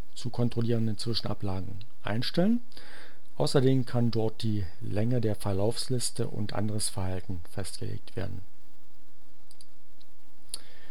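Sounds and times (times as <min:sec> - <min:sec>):
steady hiss: 0:00.0 - 0:10.9
speech: 0:00.2 - 0:08.5
computer mouse clicks: 0:09.5 - 0:10.7.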